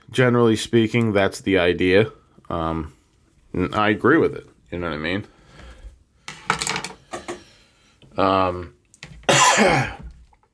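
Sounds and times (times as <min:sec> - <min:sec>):
speech: 0:00.2 - 0:05.4, 0:08.2 - 0:08.8, 0:09.6 - 0:10.0
throat clearing from a dry throat: 0:09.3 - 0:10.1.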